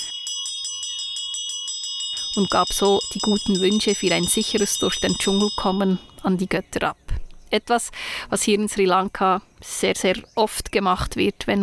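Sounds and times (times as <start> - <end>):
small metal bell rung rapidly at a Hindu shrine in the jungle in Sri Lanka: 0.0 - 6.4
speech: 2.4 - 11.6.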